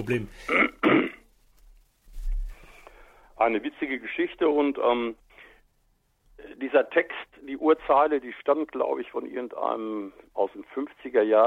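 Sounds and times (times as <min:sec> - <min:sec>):
speech: 0:00.0 - 0:00.6, 0:03.4 - 0:05.2, 0:06.4 - 0:11.4
person clearing throat: 0:00.4 - 0:01.3
faint rustling: 0:01.3 - 0:05.8.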